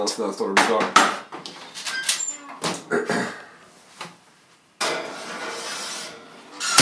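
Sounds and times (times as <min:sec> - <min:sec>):
speech: 0:00.0 - 0:01.2
dish scraping along an oven rack: 0:04.8 - 0:06.7.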